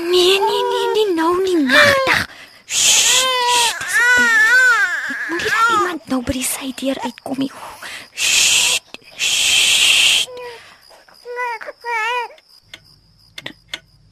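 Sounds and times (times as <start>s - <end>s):
harsh hissing noise: 0.0s - 4.4s, 7.6s - 11.2s
baby crying: 0.0s - 6.0s, 11.3s - 12.4s
speech: 6.1s - 8.4s.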